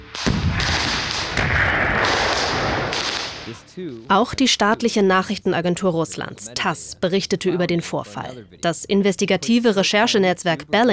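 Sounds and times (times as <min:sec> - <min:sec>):
sharp explosive blast with sustained broadband roar and rumble: 0:00.0 - 0:03.6
speech: 0:03.8 - 0:10.9.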